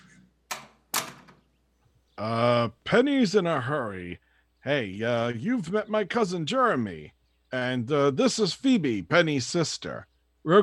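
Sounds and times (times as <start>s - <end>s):
door latch click: 0.5s - 1.4s
speech: 2.2s - 10.6s.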